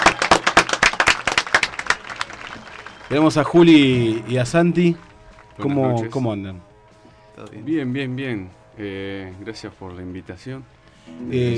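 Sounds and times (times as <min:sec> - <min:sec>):
studio audience applauding guests on a talk show: 0:00.0 - 0:05.6
speech: 0:03.1 - 0:06.7, 0:07.4 - 0:11.5.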